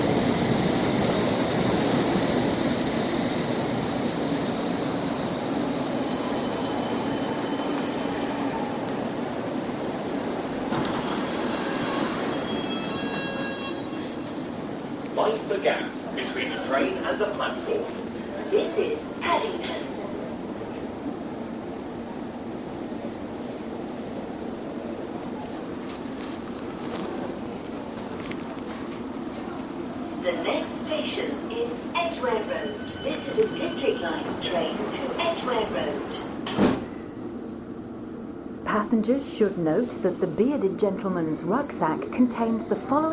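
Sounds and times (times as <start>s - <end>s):
moving train carriage rumble: 0.0s - 43.1s
speech: 39.4s - 43.1s.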